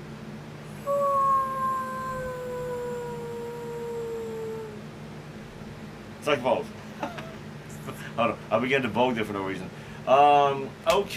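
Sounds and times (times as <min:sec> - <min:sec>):
low steady hum: 0:00.0 - 0:11.1
person howling like a wolf: 0:00.8 - 0:04.9
speech: 0:06.3 - 0:07.2, 0:08.2 - 0:11.1.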